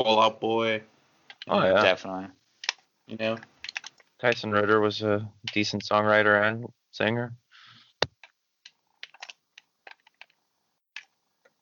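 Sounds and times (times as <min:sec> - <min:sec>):
speech: 0:00.0 - 0:00.9, 0:01.5 - 0:02.4, 0:03.1 - 0:03.5, 0:04.2 - 0:07.4
typing on a keyboard: 0:03.6 - 0:04.0, 0:09.0 - 0:10.4.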